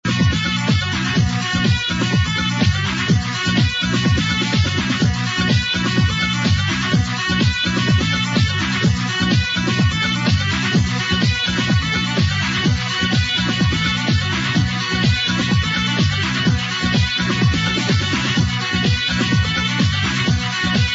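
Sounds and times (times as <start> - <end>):
saxophone: 0.0 - 20.9.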